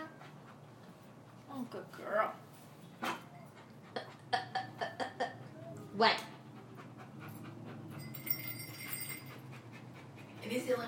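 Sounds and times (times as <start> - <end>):
dog panting: 0.0 - 1.8, 2.9 - 4.5, 5.9 - 10.8
speech: 1.6 - 3.2, 6.0 - 6.3, 10.5 - 10.8.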